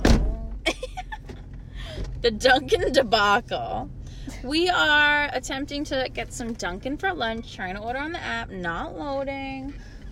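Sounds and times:
car door latch releasing: 0:00.0 - 0:00.5
speech: 0:02.2 - 0:09.9.

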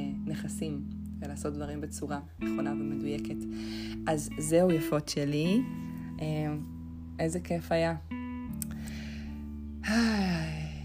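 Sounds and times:
speech: 0:00.3 - 0:08.2, 0:09.8 - 0:10.5
deep inhale with a voiced sigh-like quality: 0:03.5 - 0:04.0, 0:08.7 - 0:10.8.

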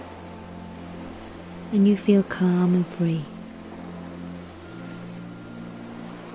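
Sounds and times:
gentle ocean waves: 0:00.0 - 0:06.3
low droning hum: 0:00.0 - 0:06.3
speech: 0:01.7 - 0:03.3.

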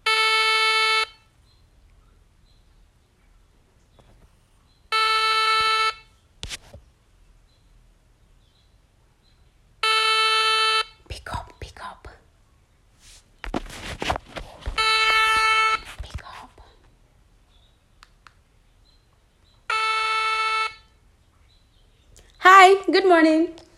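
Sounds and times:
outgoing phone call ringback tone: 0:00.0 - 0:01.2, 0:04.9 - 0:06.1, 0:09.8 - 0:11.0, 0:14.7 - 0:15.9, 0:19.7 - 0:20.9
faint click: 0:18.0 - 0:18.4
speech: 0:22.9 - 0:23.6.

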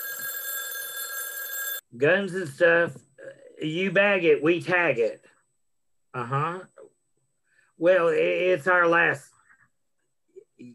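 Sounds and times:
telephone ringing with a bright electronic trill: 0:00.0 - 0:01.9
speech: 0:01.9 - 0:05.3, 0:06.1 - 0:06.7, 0:07.8 - 0:09.3.

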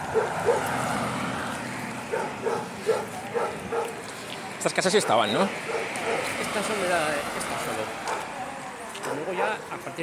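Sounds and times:
dog barking at some distance: 0:00.1 - 0:00.7, 0:02.1 - 0:04.0, 0:04.9 - 0:06.3, 0:08.1 - 0:08.3, 0:09.1 - 0:09.6
speech: 0:00.1 - 0:00.9, 0:04.6 - 0:05.8, 0:06.5 - 0:08.1, 0:09.1 - 0:10.0.

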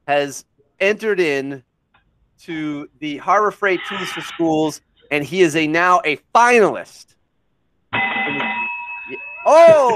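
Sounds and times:
speech: 0:00.1 - 0:01.7, 0:02.4 - 0:07.2, 0:09.1 - 0:09.9
distance-teaching bell ringing: 0:07.9 - 0:09.9.

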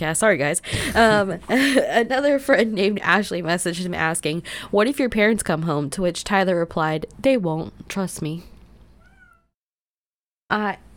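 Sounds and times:
speech: 0:00.0 - 0:08.5, 0:10.5 - 0:10.9
cat meowing: 0:09.0 - 0:09.6.

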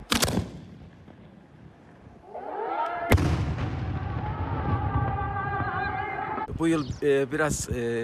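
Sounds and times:
Ramadan iftar cannon firing: 0:00.0 - 0:00.8, 0:03.1 - 0:05.4
crowd murmuring and cheering: 0:02.2 - 0:06.8
speech: 0:06.6 - 0:08.0.

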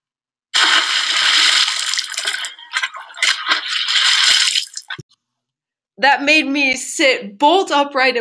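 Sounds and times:
loud water splashing in a creek: 0:00.6 - 0:05.0
speech: 0:06.0 - 0:08.1.

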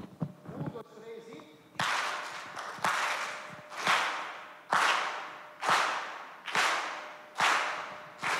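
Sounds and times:
people talking quietly: 0:00.5 - 0:01.6
sharp hand claps: 0:01.8 - 0:08.3.

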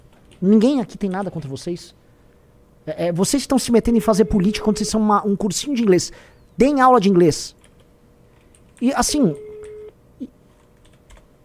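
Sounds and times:
speech: 0:00.4 - 0:02.0, 0:02.9 - 0:07.6, 0:08.8 - 0:09.4
phone line ringing tone: 0:03.9 - 0:05.1, 0:09.1 - 0:10.0.

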